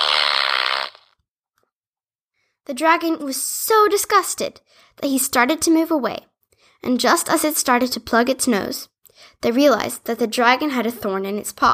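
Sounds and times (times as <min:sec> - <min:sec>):
loud buzzy fart sound effect: 0:00.0 - 0:01.2
speech: 0:02.7 - 0:11.7.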